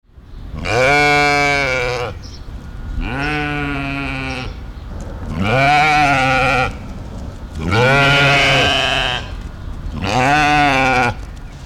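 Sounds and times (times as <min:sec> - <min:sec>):
female mouflon giving drawn-out steady bleats: 0:00.6 - 0:02.2, 0:03.0 - 0:04.6, 0:05.3 - 0:06.8, 0:07.6 - 0:09.4, 0:10.0 - 0:11.2.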